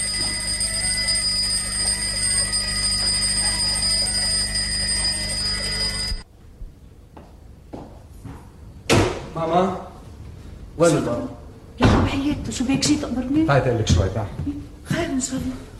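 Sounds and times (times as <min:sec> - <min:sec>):
large alarm clock ringing with a harsh metallic jangle: 0:00.0 - 0:06.2
speech: 0:09.4 - 0:09.8, 0:10.8 - 0:11.3, 0:12.3 - 0:14.6, 0:15.2 - 0:15.7.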